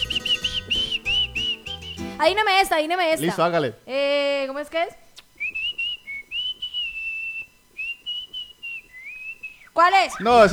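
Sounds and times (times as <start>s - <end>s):
person whistling a popular song melody: 0.0s - 2.3s, 5.4s - 9.6s
speech: 2.2s - 5.0s, 9.8s - 10.5s.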